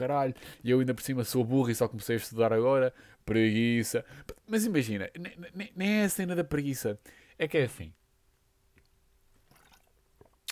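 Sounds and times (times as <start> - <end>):
speech: 0.0 - 8.0
person sipping water with wet mouth clicks and a gulp: 9.4 - 10.4.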